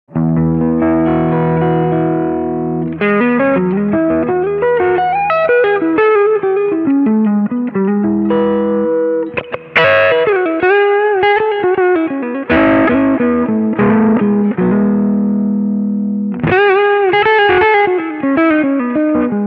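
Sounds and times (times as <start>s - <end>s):
British combo amplifier reverb: 0.1s - 19.4s.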